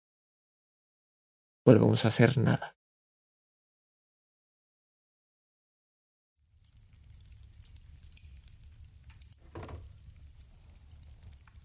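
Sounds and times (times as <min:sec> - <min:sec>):
speech: 0:01.6 - 0:02.8
fire crackling and popping in a fireplace: 0:06.4 - 0:11.6.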